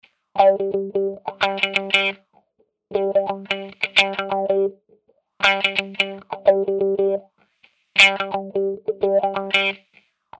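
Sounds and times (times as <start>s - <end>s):
wah-wah guitar: 0.4s - 2.2s, 2.9s - 4.8s, 5.4s - 7.3s, 8.0s - 10.3s.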